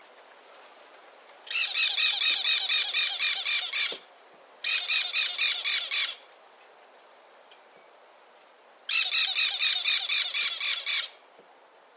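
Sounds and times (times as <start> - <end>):
Aratinga cactorum parakeet calling: 1.5 - 4.0, 4.6 - 6.2, 8.9 - 11.2.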